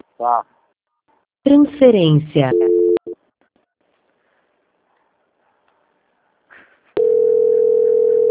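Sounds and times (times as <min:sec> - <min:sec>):
speech: 0:00.2 - 0:00.5, 0:01.4 - 0:02.7
telephone call tone while redialing: 0:02.5 - 0:03.1, 0:07.0 - 0:08.2.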